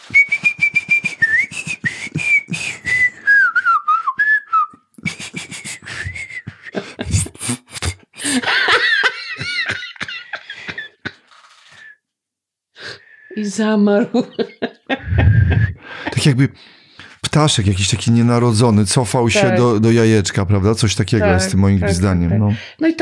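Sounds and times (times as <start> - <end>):
person whistling a melody: 0.0 - 6.9
laughter: 6.5 - 11.3, 14.1 - 16.5
speech: 13.5 - 15.3, 16.2 - 16.8, 17.4 - 22.9.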